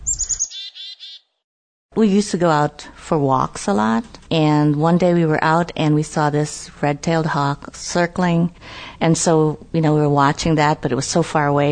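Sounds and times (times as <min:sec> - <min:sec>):
chickadee calling by a sheltered bike trail near a lakeshore: 0:00.0 - 0:01.4
speech: 0:02.0 - 0:11.7.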